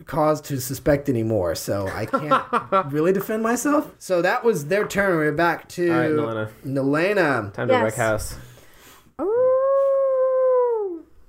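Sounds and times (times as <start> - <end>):
speech: 0.0 - 8.5, 9.2 - 9.4
laughter: 1.9 - 3.0
person imitating a direwolf howl: 9.2 - 11.1.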